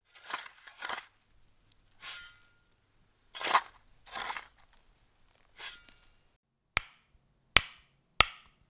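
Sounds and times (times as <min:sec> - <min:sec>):
spade digging into field soil: 0:00.0 - 0:06.3
sharp hard knocks: 0:06.8 - 0:08.6.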